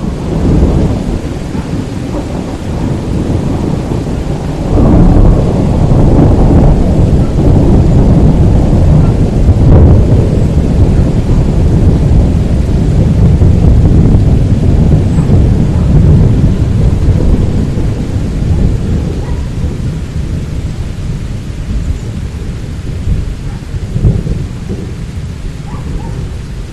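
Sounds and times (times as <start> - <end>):
rain: 0.0 - 26.7.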